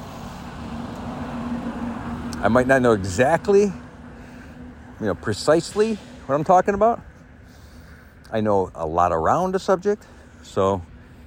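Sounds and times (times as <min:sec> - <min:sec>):
school bus driving past: 0:00.0 - 0:07.9
speech: 0:02.4 - 0:03.8, 0:05.0 - 0:07.1, 0:08.3 - 0:10.9.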